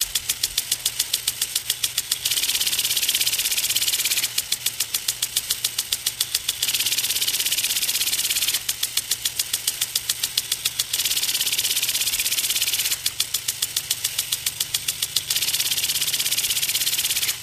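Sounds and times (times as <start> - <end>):
plastic sprinkler spraying: 0.0 - 17.4.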